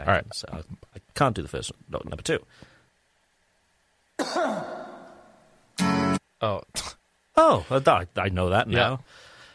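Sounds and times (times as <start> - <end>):
speech: 0.1 - 2.7, 6.4 - 9.3
throaty cough: 4.2 - 5.4
strummed guitar chords: 5.8 - 6.2.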